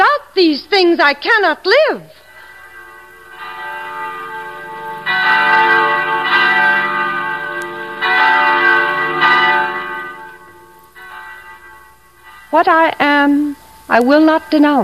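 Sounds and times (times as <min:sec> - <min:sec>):
speech: 0:00.4 - 0:02.2, 0:12.5 - 0:14.8
church bells ringing: 0:01.3 - 0:14.8.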